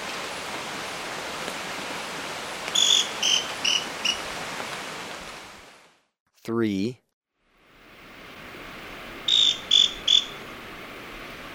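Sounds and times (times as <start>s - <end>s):
constant background hiss: 0.0s - 5.9s, 7.4s - 11.5s
speech: 6.5s - 7.0s
scale-crested pygmy-tyrant song in Ecuador: 9.3s - 10.4s.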